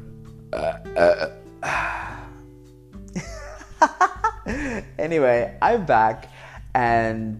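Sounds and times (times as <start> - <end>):
speech: 0.5 - 1.4, 5.1 - 7.3
person burping: 0.5 - 2.4.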